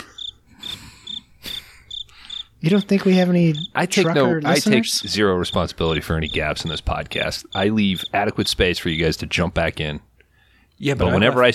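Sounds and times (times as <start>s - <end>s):
cricket chirping: 0.0s - 2.9s, 3.5s - 8.2s
speech: 2.6s - 10.1s, 10.8s - 11.5s.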